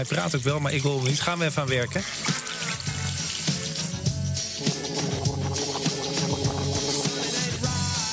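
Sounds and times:
speech: 0:00.0 - 0:02.6
rhythmic music: 0:00.0 - 0:08.1
faucet running as a glass of water is filled: 0:01.0 - 0:07.2.

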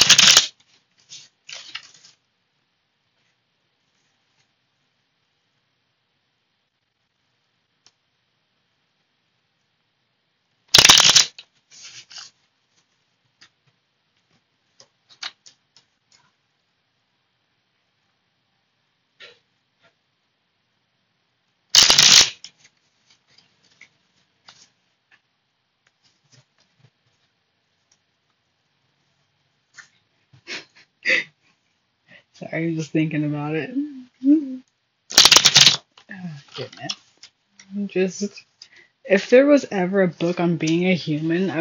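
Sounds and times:
cards tapping and clicking as they are squared up: 0:00.0 - 0:00.5, 0:21.8 - 0:22.5, 0:35.1 - 0:35.8
card deck being riffle-shuffled: 0:00.0 - 0:02.2, 0:10.7 - 0:12.4, 0:21.8 - 0:24.8, 0:35.1 - 0:35.9
speech: 0:32.5 - 0:34.4, 0:38.0 - 0:38.5, 0:39.1 - 0:41.6.

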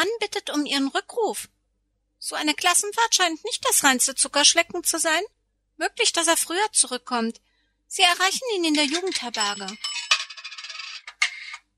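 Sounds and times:
speech: 0:00.0 - 0:01.6, 0:02.2 - 0:10.0
coins clattering through a payphone mechanism: 0:08.6 - 0:11.6.

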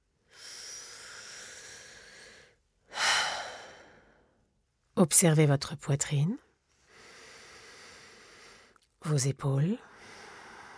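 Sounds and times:
deep breathing in through the nose and out through the mouth in a relaxation breathing exercise: 0:00.3 - 0:04.5, 0:06.8 - 0:08.8, 0:09.9 - 0:10.7
speech: 0:05.0 - 0:06.5, 0:09.1 - 0:09.9.

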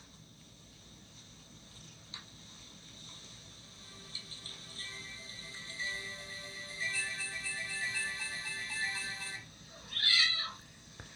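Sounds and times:
high electronic tones humming from a battery-powered toy: 0:04.8 - 0:09.5
cat meowing: 0:09.8 - 0:10.6.

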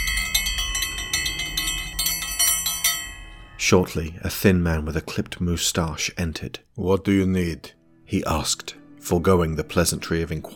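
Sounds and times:
brass hand bell shaken vigorously: 0:00.0 - 0:03.6
speech: 0:03.6 - 0:10.5.

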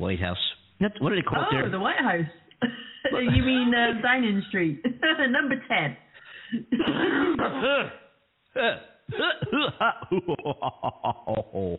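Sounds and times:
speech: 0:00.0 - 0:11.7
laughter: 0:02.6 - 0:04.1, 0:09.4 - 0:11.7
harsh coughing: 0:06.6 - 0:11.7
throat clearing: 0:06.8 - 0:09.8.

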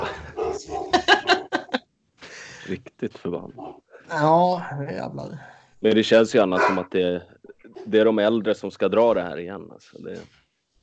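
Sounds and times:
dog barking: 0:00.0 - 0:01.0, 0:06.4 - 0:07.0
laughter: 0:00.0 - 0:03.5, 0:05.9 - 0:07.2, 0:07.8 - 0:10.2
indistinct voice: 0:00.0 - 0:10.2
speech: 0:02.7 - 0:07.3, 0:07.9 - 0:10.4.

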